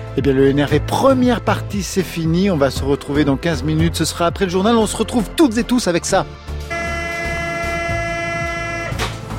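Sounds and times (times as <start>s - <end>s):
speech: 0.2s - 6.8s
commuter train sustained horn-like tone: 6.7s - 9.2s.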